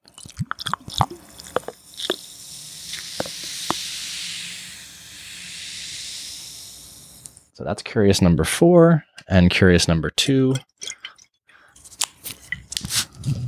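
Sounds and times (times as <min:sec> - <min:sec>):
drink poured over ice into a glass: 0:00.0 - 0:07.4
ice cube crackling and clicking: 0:00.0 - 0:07.4
fizzing hiss of settling bubbles: 0:00.5 - 0:07.5
speech: 0:07.6 - 0:10.7.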